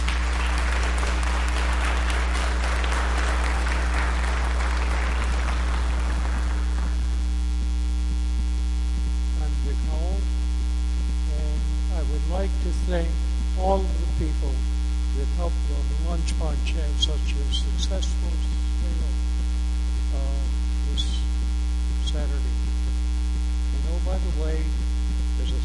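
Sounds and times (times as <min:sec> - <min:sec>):
room full of people applauding a music department performance: 0:00.0 - 0:07.1
steady electrical hum: 0:00.0 - 0:25.6.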